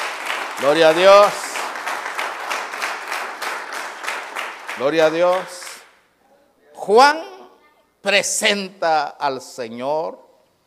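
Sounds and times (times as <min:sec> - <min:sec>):
church audience clapping hands in praise: 0:00.0 - 0:06.1
speech: 0:00.6 - 0:01.4, 0:04.8 - 0:05.6, 0:06.8 - 0:07.3, 0:08.0 - 0:10.2.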